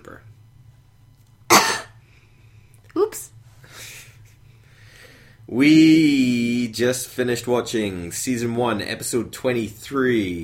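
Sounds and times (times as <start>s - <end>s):
cough: 1.5s - 2.0s
speech: 5.5s - 10.4s.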